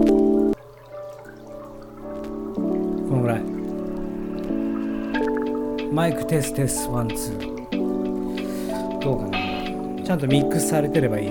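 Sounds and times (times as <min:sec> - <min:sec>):
steady patter of rain-like water sound effect: 0:00.0 - 0:11.2
sustained music with held tones: 0:00.0 - 0:11.2
speech: 0:03.3 - 0:03.6, 0:06.0 - 0:07.6, 0:09.0 - 0:09.4, 0:10.1 - 0:11.2.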